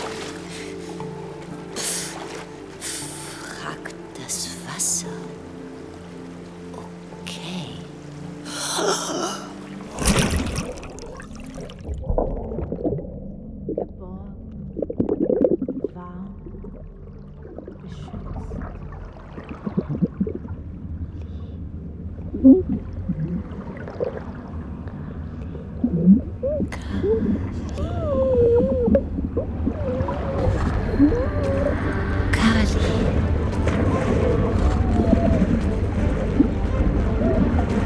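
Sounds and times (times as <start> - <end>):
water splashing: 0.0 - 4.1, 7.8 - 21.0, 22.3 - 37.8
underwater gurgling and bubbling: 9.8 - 21.1, 22.1 - 32.2, 33.0 - 37.8.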